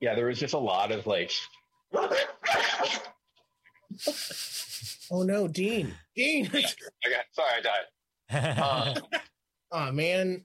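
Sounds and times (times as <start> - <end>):
speech: 0.0 - 3.0, 4.0 - 10.4
dog barking loudly: 1.9 - 3.2.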